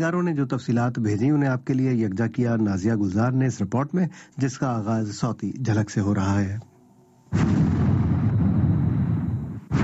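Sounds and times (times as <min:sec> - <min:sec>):
speech: 0:00.0 - 0:06.7, 0:07.3 - 0:07.8
bomb explosion: 0:07.3 - 0:09.8.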